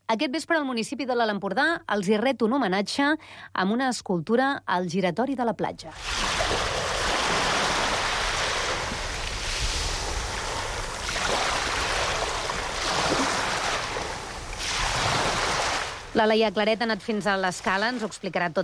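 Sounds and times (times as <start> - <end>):
speech: 0.1 - 6.8, 16.2 - 18.6
rushing hiss of surf: 6.0 - 16.2
wind buffeting the microphone: 6.0 - 16.2
sea waves washing onto the shore: 6.0 - 18.2.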